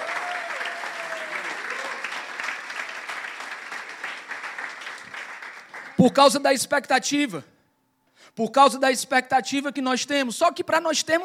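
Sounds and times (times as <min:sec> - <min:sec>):
sustained applause from a large audience: 0:00.0 - 0:06.0
speech: 0:06.0 - 0:07.5, 0:08.4 - 0:11.2.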